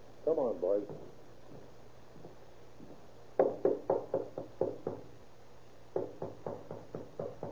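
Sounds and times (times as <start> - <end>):
speech: 0.2 - 1.7
police officer knocking on a hotel room door: 3.4 - 5.1, 6.0 - 7.4.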